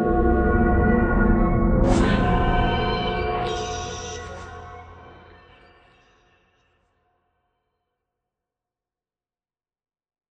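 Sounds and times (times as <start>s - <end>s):
sub bass wave: 0.1s - 5.2s.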